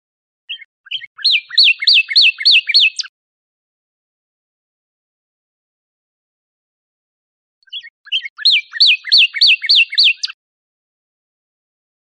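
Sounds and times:
Northern cardinal singing slurred whistles: 0.5s - 3.1s, 7.6s - 10.4s.

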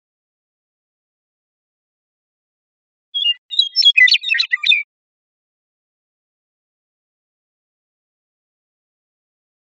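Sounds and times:
Western meadowlark song: 3.2s - 4.9s.

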